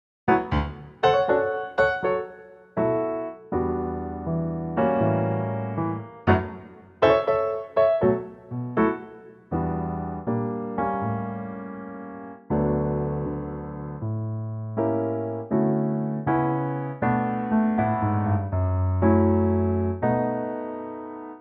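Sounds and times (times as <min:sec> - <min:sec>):
piano note D: 0:00.3 - 0:21.4.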